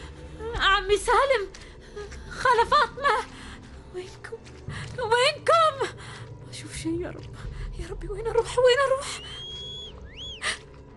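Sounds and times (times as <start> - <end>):
low murky background: 0.0 - 10.9
speech: 0.8 - 1.6, 2.4 - 9.4
thin high whistle: 9.2 - 10.4.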